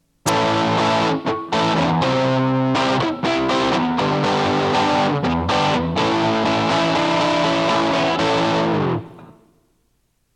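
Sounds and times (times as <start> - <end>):
heavily distorted electric guitar through an amp's chunk rhythm preset playing rhythm chords: 0.2 - 9.4.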